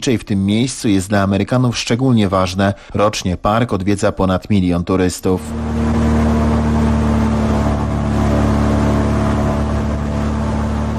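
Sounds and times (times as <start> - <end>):
speech: 0.0 - 5.9
airboat with large rear propeller speeding across Everglades swamps in Florida: 5.3 - 10.9.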